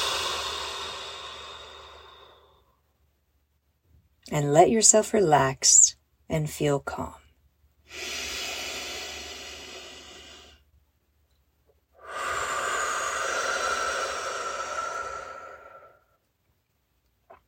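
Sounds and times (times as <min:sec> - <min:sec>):
deep breaths in through the nose and out through the mouth: 0:00.0 - 0:02.8, 0:07.8 - 0:10.7, 0:12.0 - 0:16.2
speech: 0:04.2 - 0:07.2, 0:07.9 - 0:08.2.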